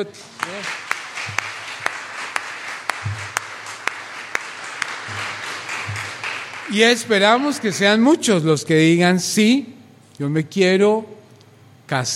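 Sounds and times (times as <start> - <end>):
speech: 0.0 - 1.5, 6.7 - 11.2, 11.9 - 12.1
crowd applauding: 0.2 - 8.2.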